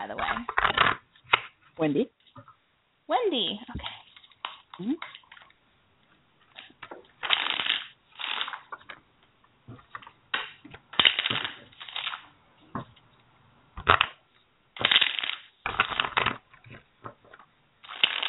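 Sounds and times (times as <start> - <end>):
speech: 0.0 - 1.0, 1.8 - 2.5, 3.1 - 4.0, 4.8 - 5.2
tarot cards being shuffled aggressively: 3.7 - 5.5, 6.5 - 9.0, 9.8 - 12.3, 14.8 - 18.2.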